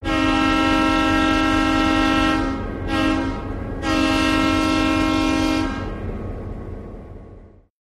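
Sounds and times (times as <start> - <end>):
diesel train horn blasts: 0.0 - 6.1.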